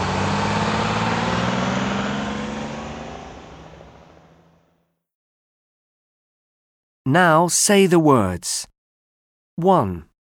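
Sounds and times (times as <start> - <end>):
heavy bus engine pulling away: 0.0 - 4.7
speech: 7.1 - 8.7, 9.6 - 10.1.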